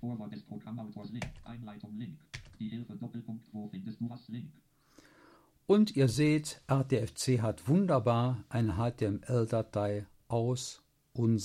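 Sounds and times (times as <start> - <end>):
speech: 0.3 - 4.7, 5.7 - 11.4
computer keyboard keys including the Tab key being pressed: 1.2 - 1.6, 2.4 - 2.6.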